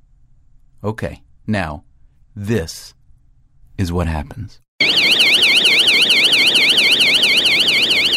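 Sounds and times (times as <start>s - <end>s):
speech: 0.8s - 3.0s, 3.8s - 5.8s
subway exit emergency door alarm warbling: 4.8s - 8.1s.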